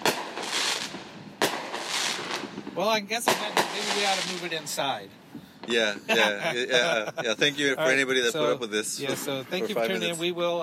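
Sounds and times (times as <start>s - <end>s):
firework blasts outdoors in a neighborhood: 0.0s - 6.0s
speech: 2.8s - 10.6s
laughter: 6.0s - 7.8s.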